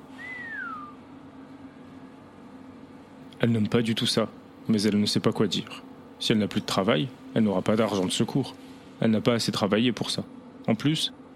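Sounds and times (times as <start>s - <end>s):
man at a factory whistling: 0.0s - 1.1s
faint low hum: 0.0s - 11.3s
speech: 3.4s - 11.2s.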